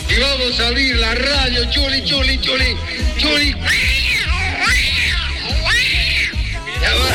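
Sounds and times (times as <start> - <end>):
speech: 0.2 - 4.0
cat meowing: 3.5 - 7.0.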